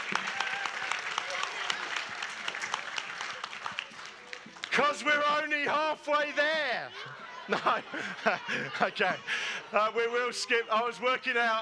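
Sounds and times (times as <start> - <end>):
crowd applauding: 0.0 - 5.5
speech: 4.8 - 11.6
laughter: 6.2 - 11.2.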